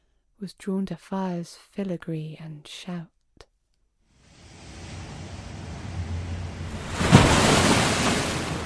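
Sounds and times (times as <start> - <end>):
speech: 0.4 - 3.2
broad hiss of churning surf: 4.2 - 8.6
large ocean wave crashing: 4.2 - 8.6.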